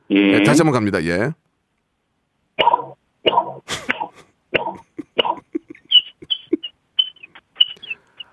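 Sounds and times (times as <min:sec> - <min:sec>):
speech: 0:00.1 - 0:01.4
voice peeping like a chick: 0:02.6 - 0:08.3.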